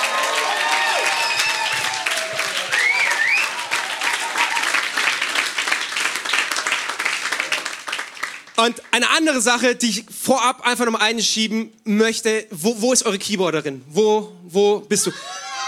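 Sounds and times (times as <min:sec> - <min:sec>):
whoops and cheers: 0:00.0 - 0:05.0, 0:15.1 - 0:15.6
large audience applauding: 0:00.0 - 0:08.9
speech: 0:08.6 - 0:15.4.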